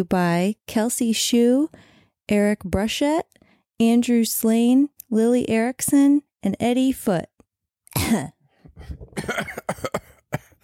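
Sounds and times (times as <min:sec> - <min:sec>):
speech: 0:00.0 - 0:07.3, 0:07.9 - 0:10.1
person clearing their throat: 0:07.9 - 0:10.6
person coughing: 0:07.9 - 0:10.6.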